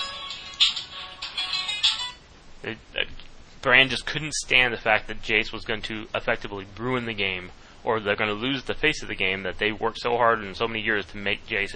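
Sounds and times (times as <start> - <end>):
mobile phone ringtone with electronic chiming tones: 0.0 - 2.2
speech: 2.6 - 11.7.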